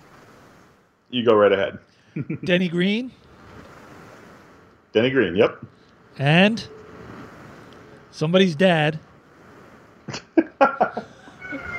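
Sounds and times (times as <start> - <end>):
speech: 1.1 - 3.3, 4.9 - 6.8, 8.1 - 9.1, 10.1 - 10.5
laughter: 2.2 - 2.5, 10.1 - 11.7
cat making short chirpy meows: 11.3 - 11.7.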